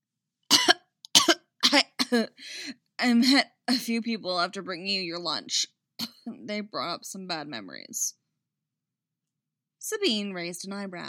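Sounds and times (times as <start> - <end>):
harsh coughs: 0.5 - 2.2
speech: 1.7 - 8.2, 9.9 - 11.0.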